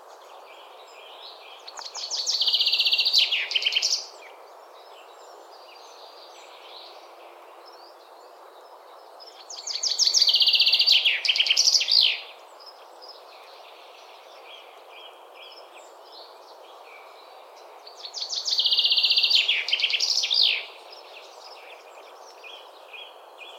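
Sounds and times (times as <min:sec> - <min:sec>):
common chaffinch Fringilla coelebs singing: 0:00.2 - 0:08.0, 0:09.2 - 0:23.5.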